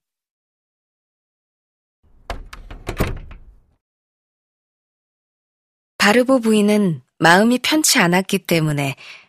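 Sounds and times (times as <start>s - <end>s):
wooden door opening and shutting as someone goes out: 2.1s - 3.8s
speech: 6.1s - 9.2s.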